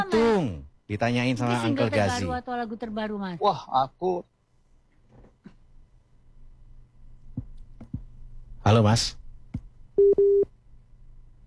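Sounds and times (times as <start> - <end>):
speech: 0.0 - 4.3, 8.6 - 9.2, 10.0 - 10.5
phone line beeps after a call cuts out: 10.0 - 10.4.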